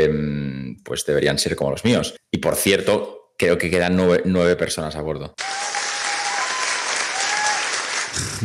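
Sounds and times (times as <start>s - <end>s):
speech: 0.0s - 5.6s, 8.2s - 8.4s
crowd applauding: 5.4s - 8.4s.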